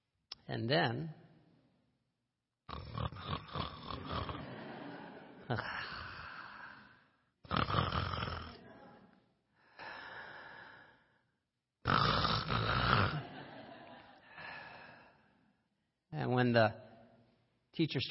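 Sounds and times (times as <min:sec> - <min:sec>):
speech: 0:00.5 - 0:01.2, 0:05.5 - 0:05.8, 0:16.5 - 0:16.8, 0:17.8 - 0:18.0
woman snoring asleep in Shavasana pose in a yoga class: 0:02.7 - 0:04.5, 0:07.4 - 0:08.6, 0:11.8 - 0:13.2
laughter: 0:04.0 - 0:06.6, 0:13.1 - 0:14.6.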